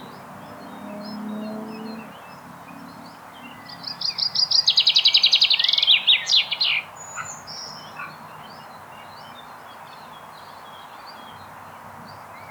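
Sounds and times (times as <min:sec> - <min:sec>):
Common chaffinch Fringilla coelebs song: 0:00.0 - 0:09.4.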